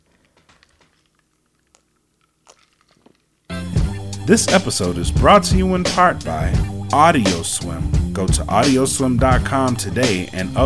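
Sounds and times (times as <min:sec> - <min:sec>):
small swallows: 0:00.0 - 0:03.3
person sipping a drink: 0:00.0 - 0:03.4
speech: 0:04.3 - 0:10.6.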